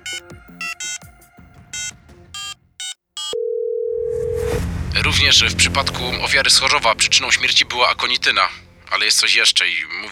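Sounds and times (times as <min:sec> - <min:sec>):
telephone dialing beeps from a call in an air-conditioned café: 0:00.0 - 0:01.0, 0:01.8 - 0:04.5
long steady telephone tone: 0:03.2 - 0:04.6
speech: 0:05.0 - 0:10.1.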